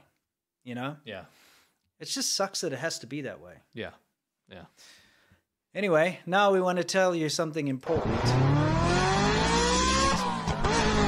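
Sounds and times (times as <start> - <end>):
speech: 0.6 - 5.0, 5.7 - 8.9
car driving engine drone with faint tonal whine: 7.9 - 11.0.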